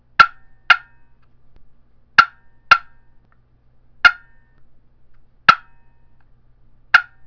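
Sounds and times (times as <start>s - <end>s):
cedar cherry box call turkey clucks: 0.2s - 1.0s, 2.2s - 3.0s, 7.0s - 7.2s.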